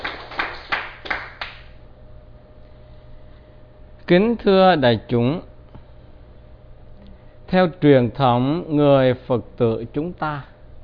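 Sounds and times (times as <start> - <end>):
audience applauding: 0.0 - 1.7
sharp louder claps: 0.0 - 1.8
speech: 4.1 - 5.5, 7.5 - 10.5.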